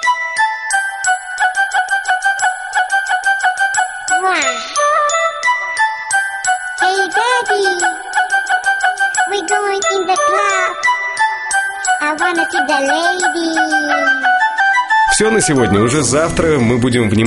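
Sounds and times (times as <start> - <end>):
bright tinkling electronic mobile phone ringtone melody: 0.0 - 17.2
squeaky pitch-bending vocal-like chirps: 4.1 - 5.4, 6.8 - 11.0, 11.8 - 14.6
speech: 15.2 - 17.2.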